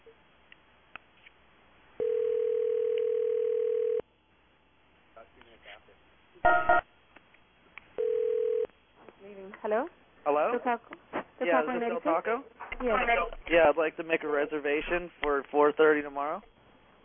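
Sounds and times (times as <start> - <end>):
telephone dial tone: 2.0 - 4.0, 8.0 - 8.7
telephone dialing clicks and beeps: 6.5 - 6.8
speech: 9.6 - 16.5.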